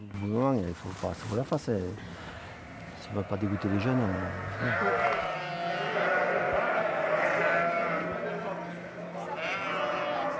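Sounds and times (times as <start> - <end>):
speech: 0.2 - 2.2, 3.1 - 5.3
large flock of ewes bleating before milking: 2.5 - 10.3.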